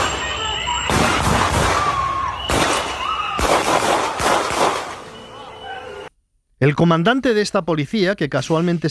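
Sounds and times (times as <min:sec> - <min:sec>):
gunshots fired by immigration police agents in mobile phone recording: 0:00.0 - 0:05.2
speech: 0:06.6 - 0:08.8.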